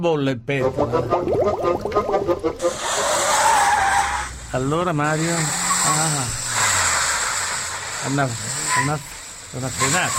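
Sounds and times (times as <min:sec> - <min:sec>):
speech: 0:00.0 - 0:03.1, 0:04.5 - 0:06.4, 0:08.0 - 0:10.1
car braking with screeching tires: 0:02.4 - 0:10.1.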